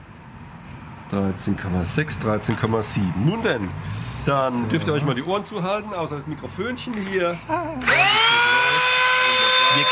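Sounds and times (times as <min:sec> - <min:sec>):
speech: 0:01.1 - 0:08.2
high-pitched power tool grinding a plastic saddle: 0:07.8 - 0:09.8.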